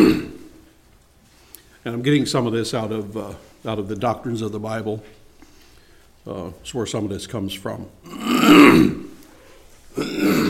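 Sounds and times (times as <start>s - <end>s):
throat clearing by someone leading a church service: 0.0s - 0.5s, 8.1s - 9.1s, 10.0s - 10.4s
speech: 1.8s - 5.2s, 6.2s - 9.0s.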